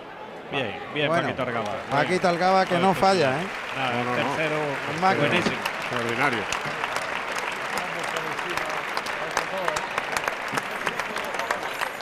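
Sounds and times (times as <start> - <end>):
speech: 0.5 - 6.8
large crowd clapping in a bullring: 1.1 - 11.9.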